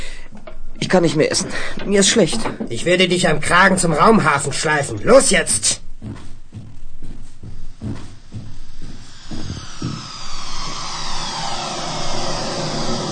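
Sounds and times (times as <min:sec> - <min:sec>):
speech: 0:00.9 - 0:06.2
high whine sweeping downward: 0:07.4 - 0:13.1
spaceship engine roaring while landing on a spaceport landing field: 0:07.7 - 0:13.1.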